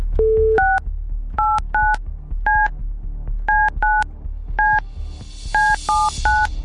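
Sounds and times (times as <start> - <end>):
two-tone DTMF beeps of a phone number dialed on a keypad: 0.2 - 0.8, 1.4 - 2.7, 3.5 - 4.8, 5.5 - 6.5.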